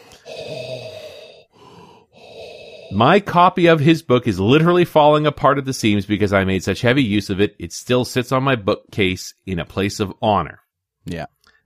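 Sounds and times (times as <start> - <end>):
voice imitating heavy mechanical respirator breathing: 0.0 - 3.0
speech: 2.9 - 11.4.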